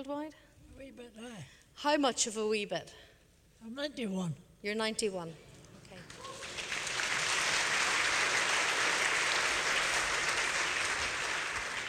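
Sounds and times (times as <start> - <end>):
speech: 0.0 - 6.1
audience applause: 6.0 - 11.8.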